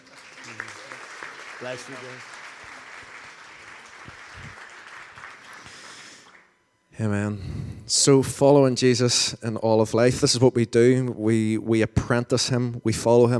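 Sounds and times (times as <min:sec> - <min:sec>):
audience applause: 0:00.0 - 0:06.5
speech: 0:01.6 - 0:02.3, 0:07.0 - 0:13.3.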